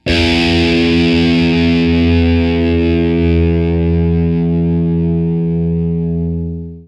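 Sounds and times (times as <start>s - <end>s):
Electric VS40V single note: 0.0s - 6.8s.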